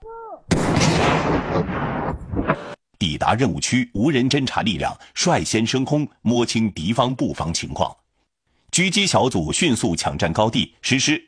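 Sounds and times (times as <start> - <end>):
demolition charge set off by a military blasting team to clear a road obstacle: 0.5 - 2.8
speech: 3.0 - 8.0, 8.7 - 11.2.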